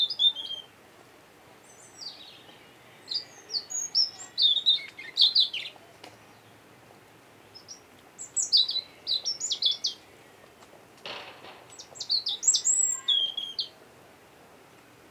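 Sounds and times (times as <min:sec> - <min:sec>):
European robin Erithacus rubecula singing: 0:00.0 - 0:00.7, 0:01.6 - 0:06.6, 0:07.4 - 0:10.5, 0:11.7 - 0:13.8.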